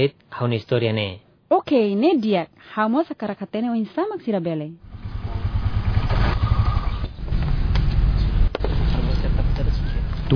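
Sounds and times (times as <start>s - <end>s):
speech: 0.0s - 4.9s
three-wheeled motorcycle engine rumbling: 4.8s - 10.3s.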